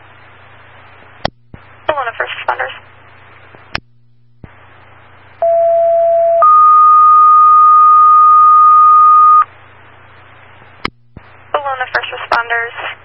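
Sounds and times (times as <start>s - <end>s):
hiss of radio static: 0.0s - 3.8s, 4.4s - 5.4s, 9.4s - 13.0s
two-tone dispatch pager alert: 5.4s - 9.4s.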